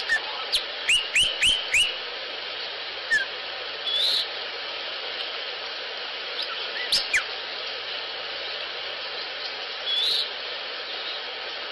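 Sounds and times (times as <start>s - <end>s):
Sinaloa Wren calling with clear upslurred whistles: 0.0s - 2.0s, 3.1s - 4.3s, 6.4s - 7.3s, 9.8s - 10.3s
steady hiss: 0.0s - 11.7s.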